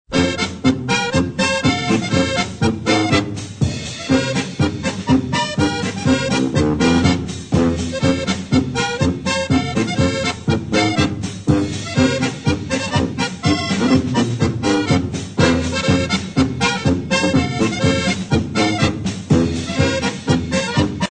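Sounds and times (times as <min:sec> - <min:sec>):
polka bass: 0:00.1 - 0:21.0.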